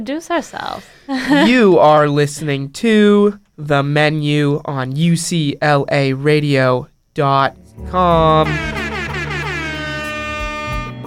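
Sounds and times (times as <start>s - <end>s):
speech: 0.0s - 8.8s
air horn sound effect blast: 7.8s - 11.0s.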